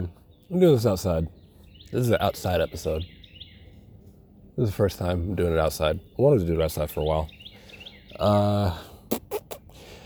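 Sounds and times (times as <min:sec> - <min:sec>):
speech: 0:00.0 - 0:03.2, 0:04.6 - 0:07.4, 0:08.1 - 0:08.9
small birds chirping outdoors: 0:00.0 - 0:10.0.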